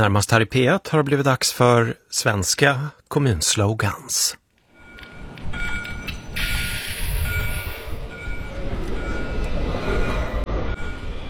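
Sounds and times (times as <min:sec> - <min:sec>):
speech: 0:00.0 - 0:04.4
tram rumbling along its tracks: 0:04.6 - 0:11.2
high metallic tram squeals: 0:04.7 - 0:11.2.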